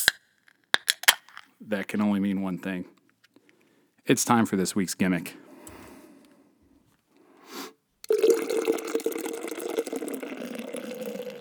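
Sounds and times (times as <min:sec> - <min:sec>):
speech: 0:01.7 - 0:03.0, 0:04.1 - 0:05.5
beer poured into an Oktoberfest stein made in Austria: 0:08.1 - 0:11.3.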